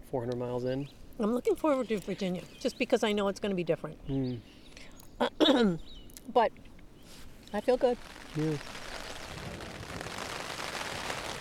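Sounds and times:
speech: 0.1 - 4.6, 5.2 - 6.7, 7.5 - 8.8
rain and hail pelting tent fabric: 7.8 - 11.3.

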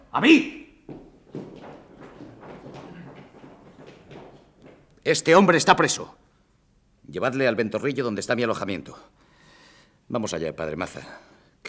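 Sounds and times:
speech: 0.2 - 0.6, 5.0 - 6.2, 7.1 - 9.2, 10.1 - 11.6
horse hooves clip-clopping: 0.8 - 5.3.

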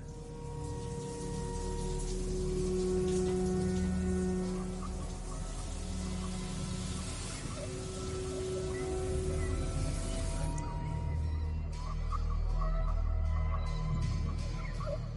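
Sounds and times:
shower water spraying onto a hard surface: 0.0 - 10.6
faint tonal hum: 0.0 - 15.1.

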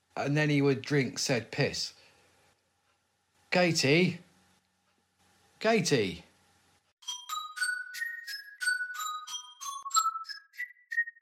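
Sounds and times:
speech: 0.2 - 2.0, 3.5 - 4.2, 5.6 - 6.3
doorbell chime melody: 7.0 - 11.1.

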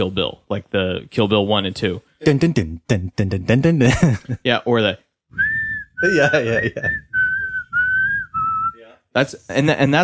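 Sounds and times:
speech: 0.0 - 5.0, 6.0 - 7.1, 9.2 - 10.0
burst of voices or laughter: 3.7 - 4.5, 6.0 - 7.3
whistled film theme melody: 5.3 - 8.8.

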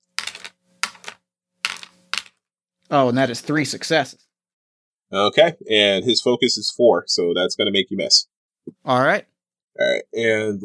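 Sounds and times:
five dice clattering across a hard surface: 0.0 - 2.4
speech: 2.9 - 4.3, 5.1 - 10.6.

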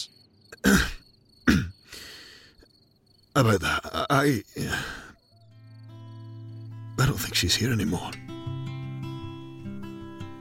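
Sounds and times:
man weakly clearing his throat: 0.6 - 1.8
speech: 3.4 - 5.0, 7.1 - 8.3.

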